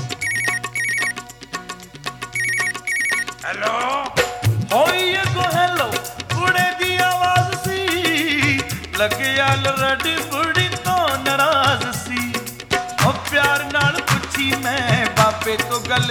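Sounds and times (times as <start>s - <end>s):
telephone ringing: 0.0s - 1.3s, 2.4s - 3.4s
continuous loud music: 0.0s - 16.1s.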